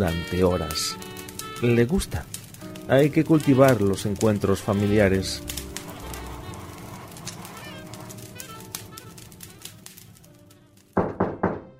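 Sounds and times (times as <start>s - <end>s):
speech: 0.0s - 5.6s
knocking on a door: 11.0s - 11.7s.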